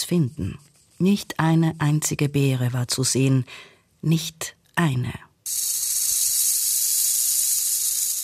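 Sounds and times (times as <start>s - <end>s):
speech: 0.1s - 5.8s
loud snake-like hissing: 5.5s - 8.2s.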